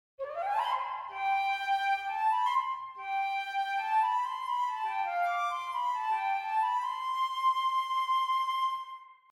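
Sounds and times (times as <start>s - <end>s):
flute: 0.2s - 9.3s.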